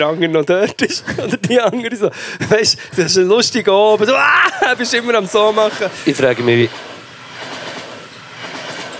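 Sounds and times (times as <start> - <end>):
laughter: 0.0 - 6.8
speech: 0.0 - 6.9
faint rhythmic clatter of train wheels: 0.0 - 8.9
passing train rumbling with a broad steady roar: 2.1 - 8.9.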